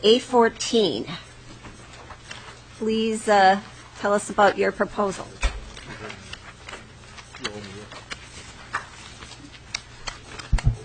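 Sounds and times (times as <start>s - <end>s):
speech: 0.0s - 1.3s, 2.8s - 5.4s
steady low hum: 0.0s - 10.8s
stacks of paper rustling and shuffling: 1.5s - 2.7s, 5.6s - 10.8s
thumps: 10.5s - 10.8s.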